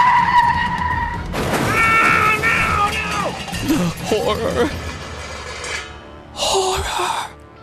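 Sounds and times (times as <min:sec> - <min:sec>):
car tires screeching in a skid: 0:00.0 - 0:05.9
rough clattering of a crash: 0:01.2 - 0:06.0
speech: 0:04.2 - 0:04.9.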